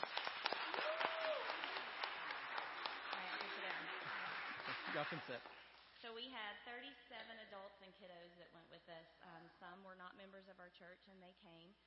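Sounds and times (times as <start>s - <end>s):
audience clapping: 0.0s - 5.8s
speech: 4.9s - 11.8s.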